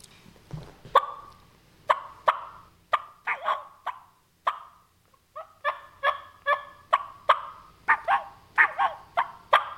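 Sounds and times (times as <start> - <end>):
turkey call bubble clucks imitating a feeding turkey: 1.0 - 9.7
turkey call short rising and falling whines: 1.9 - 4.8, 5.4 - 9.7.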